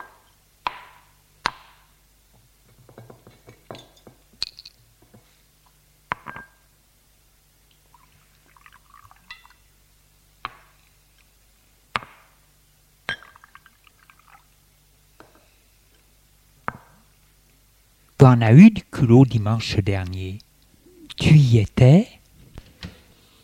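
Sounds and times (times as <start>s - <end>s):
bottle and glasses set down on a table: 2.9s - 4.8s, 6.2s - 6.6s, 13.1s - 13.5s
speech: 18.2s - 20.4s, 21.3s - 22.2s.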